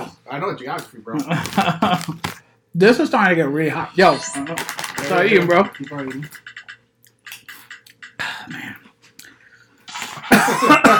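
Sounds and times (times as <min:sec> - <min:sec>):
speech: 0:00.3 - 0:06.5
raspy coughs and throat sounds: 0:10.1 - 0:10.9.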